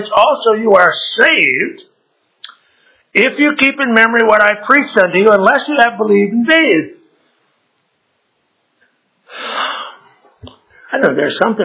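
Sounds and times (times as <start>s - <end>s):
speech: 0.0s - 1.9s, 3.1s - 7.0s, 10.9s - 11.6s
man's sharp wheezy inhale before a sneeze in a church: 9.3s - 10.2s.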